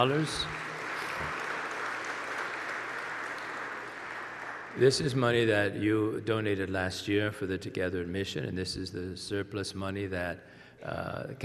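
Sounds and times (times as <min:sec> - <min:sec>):
speech: 0:00.0 - 0:00.6, 0:04.8 - 0:11.4
audience applauding: 0:00.0 - 0:05.2.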